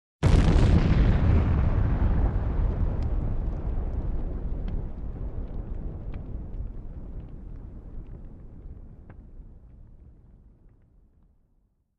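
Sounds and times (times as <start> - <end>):
huge explosion up-close: 0.2 - 10.5.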